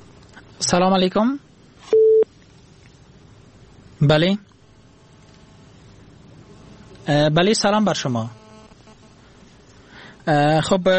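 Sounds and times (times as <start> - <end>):
speech: 0.6 - 1.5, 4.0 - 4.5, 7.1 - 8.4, 10.3 - 10.9
telephone busy tone after a dropped call: 1.9 - 2.3.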